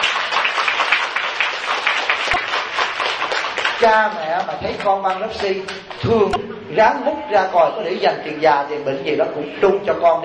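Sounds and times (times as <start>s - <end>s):
crowd applauding for the parents: 0.0s - 6.0s
speech: 3.8s - 10.2s.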